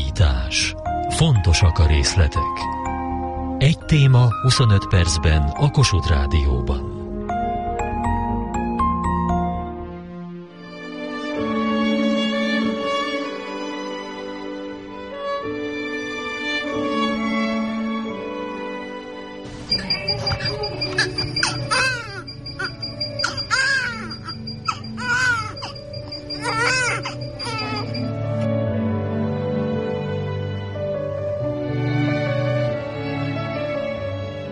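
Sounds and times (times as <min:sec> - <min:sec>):
soft steady musical background: 0:00.0 - 0:34.5
speech: 0:00.5 - 0:02.8, 0:03.6 - 0:06.9
newborn baby crying: 0:20.8 - 0:28.1.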